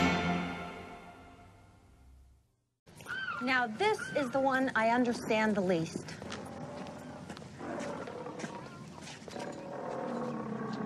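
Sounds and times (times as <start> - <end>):
speech: 3.4 - 6.2
lion roaring and growling: 6.4 - 10.8.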